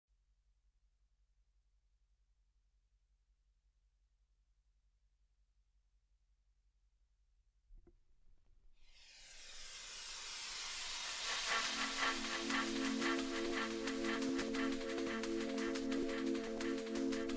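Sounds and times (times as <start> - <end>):
drum and bass jungle music: 9.0 - 17.3.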